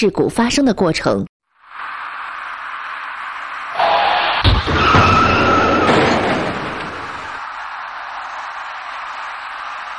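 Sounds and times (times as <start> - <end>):
speech: 0.0 - 1.4
passenger car tires skidding and squealing: 1.6 - 9.9.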